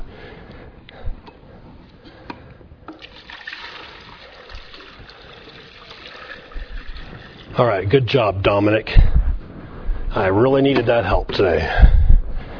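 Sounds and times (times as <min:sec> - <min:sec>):
liquid poured back into a container: 0:02.9 - 0:07.6
speech: 0:07.6 - 0:09.2, 0:10.1 - 0:11.9.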